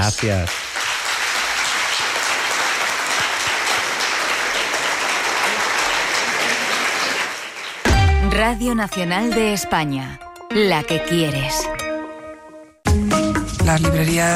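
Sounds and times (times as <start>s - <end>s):
speech: 0.0s - 0.6s, 8.3s - 11.7s, 13.7s - 14.3s
crowd applauding: 0.0s - 8.2s.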